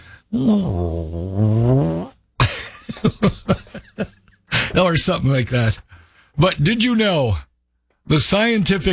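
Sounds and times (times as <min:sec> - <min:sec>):
speech: 0:00.3 - 0:02.0, 0:04.9 - 0:08.9
voice imitating a rumbling stomach: 0:00.3 - 0:02.2
laughter: 0:02.4 - 0:04.8.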